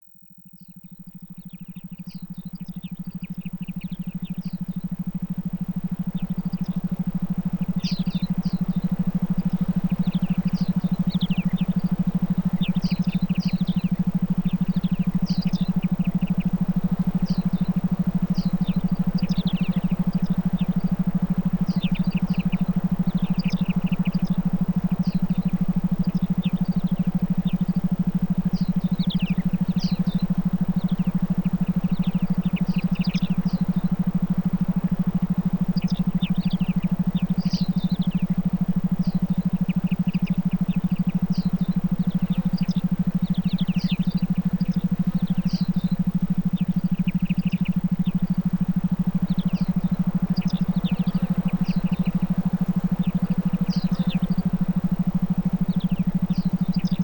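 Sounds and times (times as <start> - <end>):
forest ambience: 0.4 - 57.0.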